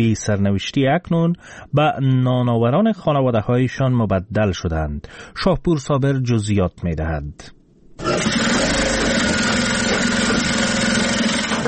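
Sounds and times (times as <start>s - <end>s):
speech: 0.0s - 8.8s
electric sewing machines running in a large hall: 8.0s - 11.6s.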